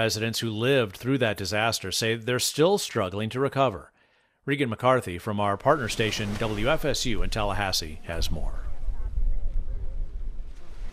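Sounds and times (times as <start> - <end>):
speech: 0.0 - 8.6
gentle waves washing against a sugar-white sand beach shore: 5.7 - 8.8
wind buffeting the microphone: 6.7 - 10.9.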